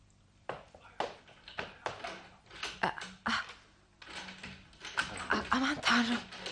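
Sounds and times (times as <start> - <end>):
metallic clicking and rattling of a broken stiff door lock: 1.3 - 3.3, 4.0 - 6.5
speech: 2.8 - 3.2, 5.6 - 6.3.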